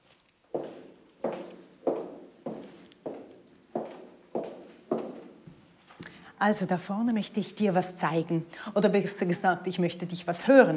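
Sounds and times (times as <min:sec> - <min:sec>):
footsteps walking: 0:00.0 - 0:06.1
speech: 0:06.4 - 0:10.7.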